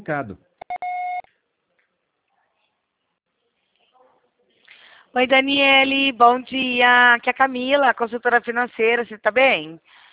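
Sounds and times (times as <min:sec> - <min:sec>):
speech: 0:00.0 - 0:00.6, 0:05.2 - 0:10.0
short electronic voicemail beep: 0:00.6 - 0:01.3.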